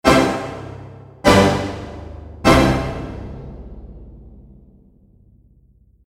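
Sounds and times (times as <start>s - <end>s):
jingle: 0.0s - 3.5s.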